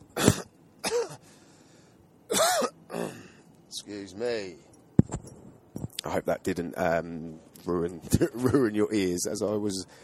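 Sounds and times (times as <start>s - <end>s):
person coughing: 0.2s - 1.2s, 2.3s - 3.4s
throat clearing: 0.2s - 1.2s, 2.3s - 3.4s
speech: 3.8s - 4.7s, 6.0s - 10.0s.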